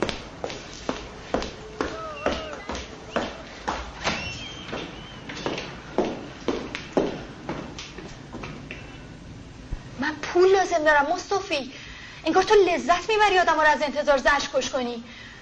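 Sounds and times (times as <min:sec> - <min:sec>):
woman's footsteps walking into a workplace: 0:00.0 - 0:09.0
speech: 0:10.8 - 0:15.2.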